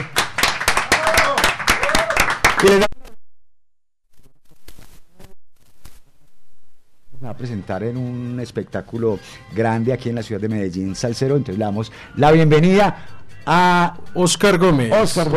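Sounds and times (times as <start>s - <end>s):
applause from a small group in a studio: 0.0s - 3.0s
speech: 2.6s - 3.0s, 7.4s - 15.3s.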